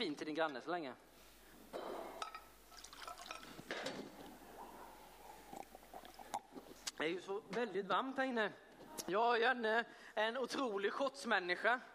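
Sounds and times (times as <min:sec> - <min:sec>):
speech: 0:00.0 - 0:02.1, 0:07.0 - 0:11.9
water pouring into a glass: 0:02.3 - 0:06.7
soft gulps: 0:04.1 - 0:07.0.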